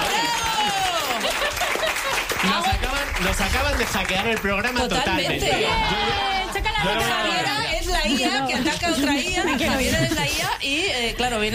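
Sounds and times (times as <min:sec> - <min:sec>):
people whooping and cheering: 0:00.0 - 0:02.3, 0:05.4 - 0:07.5
laughter: 0:00.0 - 0:02.7, 0:04.9 - 0:10.6
audience applause: 0:00.0 - 0:06.8
speech: 0:02.4 - 0:11.5.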